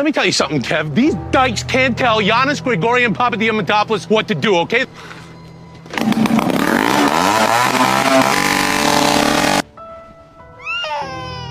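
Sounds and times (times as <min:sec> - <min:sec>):
speech: 0:00.0 - 0:05.2
loud motorcycle engine revving hard: 0:00.7 - 0:09.7.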